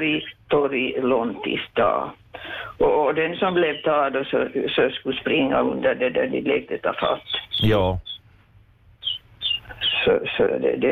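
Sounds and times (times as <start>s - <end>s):
speech: 0.0s - 8.1s, 10.0s - 10.9s
canary singing: 6.9s - 8.3s, 9.0s - 10.1s.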